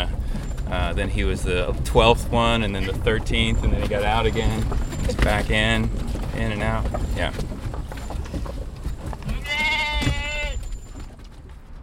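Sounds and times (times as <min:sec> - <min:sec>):
faint shuffling: 0:00.0 - 0:11.8
steady low rumble: 0:00.0 - 0:11.8
speech: 0:01.0 - 0:07.6
sheep bleating inside a minivan: 0:09.3 - 0:10.6.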